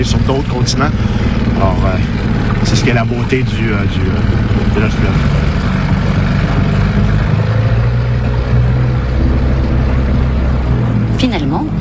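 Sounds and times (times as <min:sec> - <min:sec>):
speech: 0:00.0 - 0:05.5
motorboat engine droning on the Saint Lawrence River: 0:00.0 - 0:11.7.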